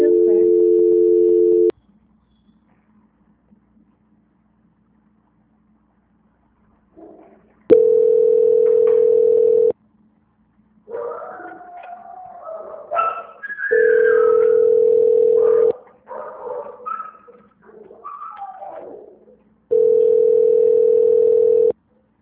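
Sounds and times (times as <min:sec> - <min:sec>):
people talking: 0:00.0 - 0:00.5
telephone tones while a call is being transferred: 0:00.0 - 0:01.7, 0:07.7 - 0:09.7, 0:13.7 - 0:15.7, 0:19.7 - 0:21.7.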